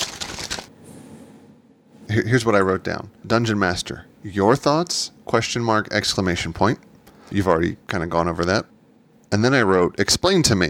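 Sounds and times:
notebook pages rustling: 0.0s - 1.3s
speech: 2.1s - 8.7s, 9.3s - 10.6s.

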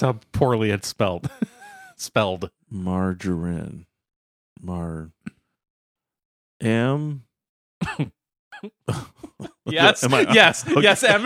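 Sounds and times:
speech: 0.0s - 3.9s, 4.6s - 5.4s, 6.6s - 11.2s
laughter: 1.2s - 2.0s, 8.9s - 11.2s
stifled cough: 7.8s - 10.3s.

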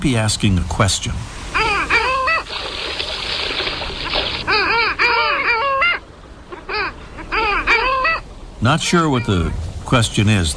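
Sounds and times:
speech: 0.0s - 1.4s, 8.6s - 10.5s
flock of long-tailed ducks calling: 0.1s - 10.5s.

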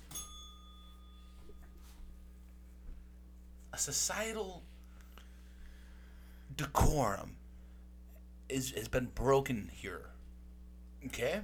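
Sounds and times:
small bell ringing: 0.0s - 2.2s
speech: 3.8s - 4.7s, 6.6s - 7.4s, 8.5s - 10.1s, 11.0s - 11.4s.

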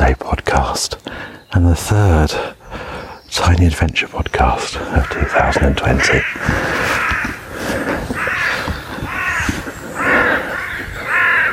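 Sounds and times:
speech: 1.6s - 2.6s, 3.4s - 7.0s
several crows cawing at dawn: 4.5s - 11.5s.

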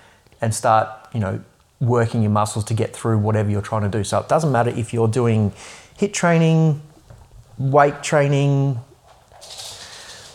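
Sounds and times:
soft hiss: 0.0s - 10.3s
speech: 0.4s - 6.9s, 7.6s - 8.9s
dogs' claws tapping across hard floors: 9.0s - 10.3s.

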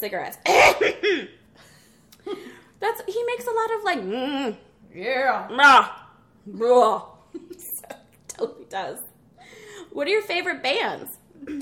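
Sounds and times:
speech: 0.0s - 7.6s, 8.4s - 9.1s, 9.8s - 11.6s
throaty coughing: 0.4s - 1.5s, 11.4s - 11.6s.

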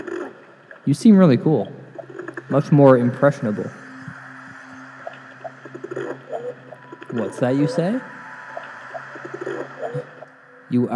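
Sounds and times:
hum: 0.0s - 10.9s
speech: 0.8s - 1.8s, 2.5s - 3.8s, 7.3s - 8.2s, 10.7s - 10.9s
pigeon cooing: 5.4s - 10.3s.

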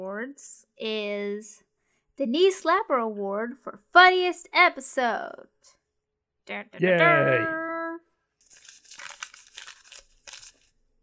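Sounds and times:
speech: 0.2s - 1.6s, 2.2s - 5.8s, 6.5s - 7.6s
paper crumpled and crinkled: 8.4s - 10.8s.

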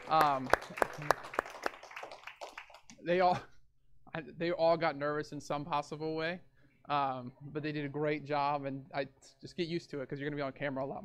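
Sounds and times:
people cheering: 0.0s - 2.8s
audience clapping: 0.0s - 3.0s
speech: 0.1s - 1.2s, 3.0s - 3.5s, 4.2s - 11.0s.

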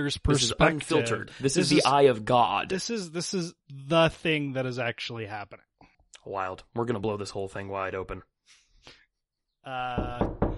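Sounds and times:
speech: 0.0s - 9.0s, 9.6s - 10.4s
knocking on a door: 9.9s - 10.5s.

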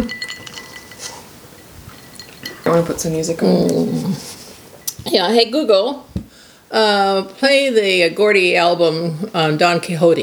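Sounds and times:
drinking glasses clinking together in a toast: 0.0s - 3.2s
speech: 2.7s - 4.4s, 5.0s - 6.1s, 6.7s - 10.2s.

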